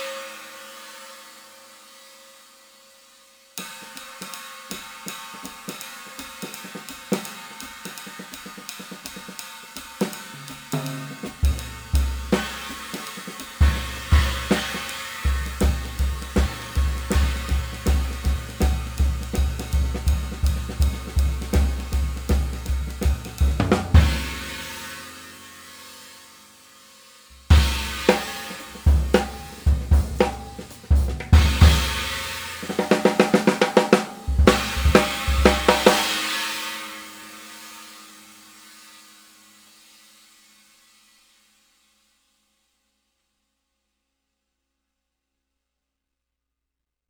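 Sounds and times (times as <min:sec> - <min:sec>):
22-inch swish cymbal: 0:03.6 - 0:26.1, 0:27.3 - 0:39.1.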